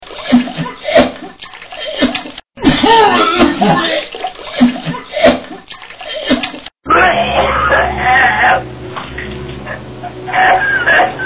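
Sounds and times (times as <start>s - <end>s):
person vomiting: 0.2s - 8.6s
laughter: 10.0s - 11.2s.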